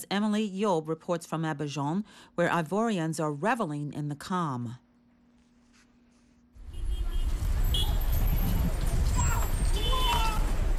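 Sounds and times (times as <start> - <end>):
speech: 0.0 - 4.8
short car horn blasts: 6.6 - 8.1
dense city traffic roaring: 6.6 - 10.7.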